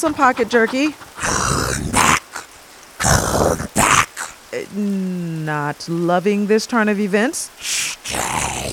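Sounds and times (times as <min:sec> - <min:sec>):
speech: 0:00.0 - 0:01.6, 0:04.7 - 0:08.7
dog growling and snarling: 0:00.0 - 0:04.4, 0:07.6 - 0:08.7.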